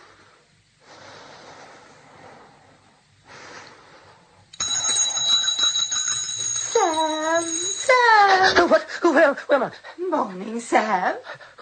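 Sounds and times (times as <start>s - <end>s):
bell ringing with a shrill metallic tone: 4.6s - 8.6s
speech: 9.2s - 11.6s.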